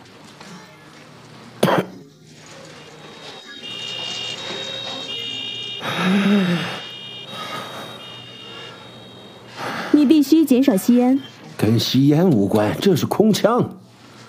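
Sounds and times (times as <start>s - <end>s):
steady hum: 1.2s - 12.2s
person coughing: 1.6s - 2.0s
speech: 10.5s - 13.8s.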